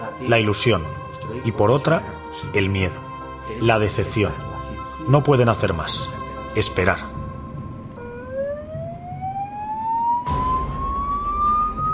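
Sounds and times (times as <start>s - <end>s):
speech: 0.2s - 7.1s
ambulance siren wailing with rising pitch: 8.0s - 11.9s.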